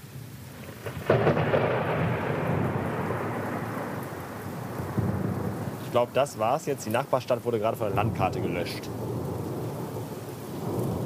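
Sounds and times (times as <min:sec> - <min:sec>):
hiss of rain: 0:00.0 - 0:11.0
thunder rumbling during a thunderstorm: 0:00.6 - 0:11.0
speech: 0:06.0 - 0:09.1.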